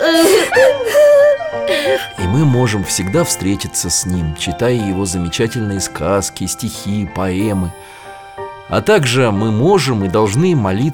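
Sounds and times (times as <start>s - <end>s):
girl crying: 0.0s - 2.2s
speech: 1.9s - 8.0s, 8.7s - 10.9s.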